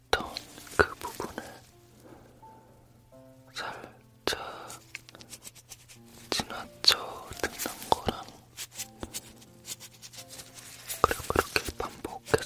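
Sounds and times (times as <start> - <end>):
latex-gloved hands moving and rubbing: 0.2 - 2.4, 4.7 - 12.4.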